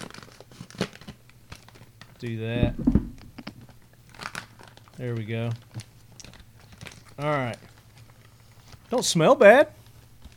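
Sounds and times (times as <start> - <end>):
foil food pouch packaging crinkling: 0.0 - 1.9, 4.1 - 8.9
speech: 2.2 - 3.0, 5.0 - 5.9, 7.2 - 7.7, 8.9 - 9.8.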